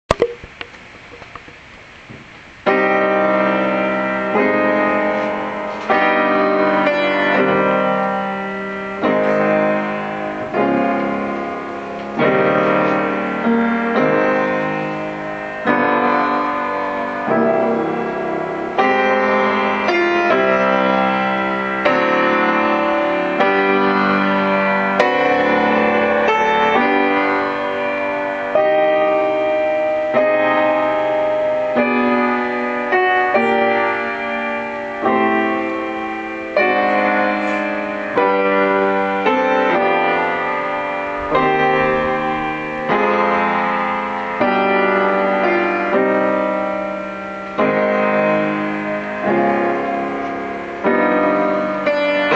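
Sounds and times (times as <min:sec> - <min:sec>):
prelude in C minor: 0:02.6 - 0:52.3.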